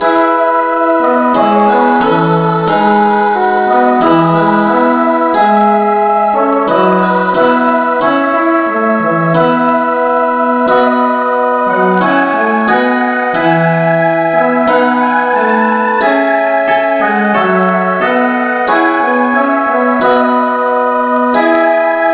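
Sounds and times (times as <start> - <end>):
instrumental music in E: 0.0 - 22.1.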